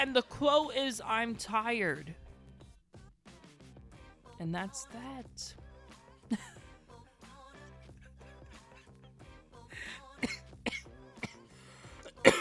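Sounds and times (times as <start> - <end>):
speech: 0.0 - 2.2, 4.4 - 5.6, 6.3 - 6.5
steady quiet music bed: 0.0 - 12.3
short coughs: 10.2 - 11.4, 12.0 - 12.3
throat clearing: 12.0 - 12.3.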